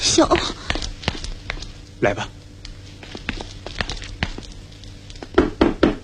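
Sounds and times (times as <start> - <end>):
speech: 0.2 - 0.8, 2.0 - 2.4
knocking on a door during a staged comedy sketch: 5.3 - 6.0.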